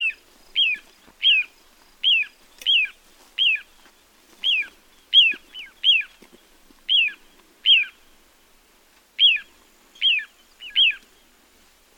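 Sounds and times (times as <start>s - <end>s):
little ringed plover calling: 0.0s - 3.7s, 4.4s - 6.1s, 6.9s - 8.0s, 9.2s - 11.0s.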